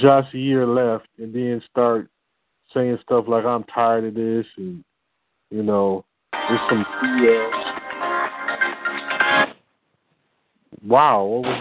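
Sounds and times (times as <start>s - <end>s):
speech: 0.0s - 4.9s, 5.5s - 7.7s, 10.7s - 11.5s
mobile phone ringtone playing a melodic electronic tune: 6.4s - 9.3s.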